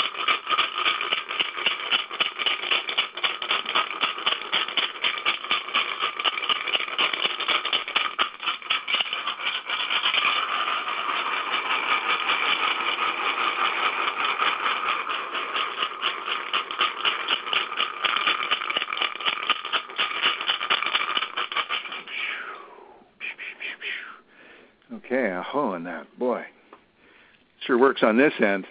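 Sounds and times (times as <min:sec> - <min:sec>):
hand rattle shaken hard and continuously: 0:00.0 - 0:22.4
speech: 0:25.5 - 0:26.5, 0:27.7 - 0:28.7.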